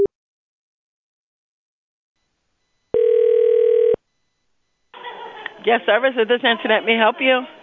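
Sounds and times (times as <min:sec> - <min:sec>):
steady electronic telephone line tone on a cell phone call on hold: 0:02.6 - 0:04.9
laughter: 0:05.0 - 0:07.6
speech: 0:05.7 - 0:07.6.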